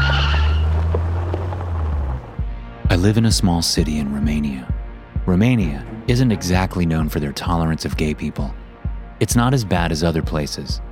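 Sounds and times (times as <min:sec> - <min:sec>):
car tires squealing while peeling out: 0:00.0 - 0:02.4
loud low car engine roar: 0:00.0 - 0:03.2
speech: 0:03.0 - 0:08.6, 0:09.2 - 0:10.8.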